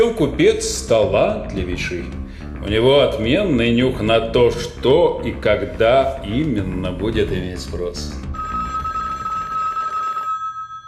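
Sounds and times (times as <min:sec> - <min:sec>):
speech: 0:00.0 - 0:08.2
telephone ringing with a steady piercing high ring: 0:08.3 - 0:10.8.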